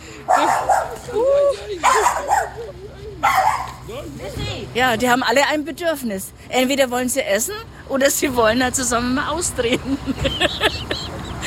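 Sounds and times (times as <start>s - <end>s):
laughter: 0.0s - 3.3s, 9.6s - 11.4s
dog barking: 0.3s - 1.0s, 1.8s - 2.6s, 3.2s - 3.8s
speech: 4.8s - 10.8s.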